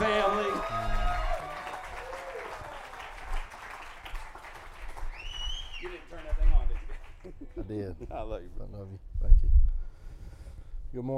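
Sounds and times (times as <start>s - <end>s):
cheers and whistles: 0.0s - 3.2s, 5.0s - 6.2s
laughter: 6.6s - 8.3s
speech: 7.9s - 9.1s, 10.9s - 11.1s.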